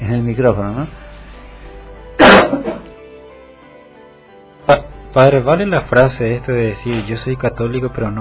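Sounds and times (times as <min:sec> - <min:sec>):
speech: 0:00.1 - 0:01.0, 0:04.7 - 0:08.1
person coughing: 0:02.2 - 0:02.9.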